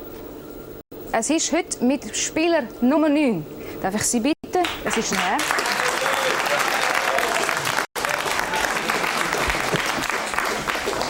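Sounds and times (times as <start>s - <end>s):
speech: 1.1s - 5.7s
studio audience applause at a game show: 4.8s - 11.0s.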